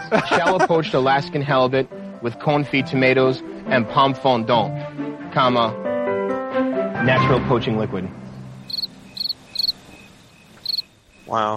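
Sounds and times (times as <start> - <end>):
laughter: 0.0 - 1.1
speech: 0.1 - 5.9, 7.0 - 8.2, 11.3 - 11.5
crickets chirping: 8.3 - 11.5.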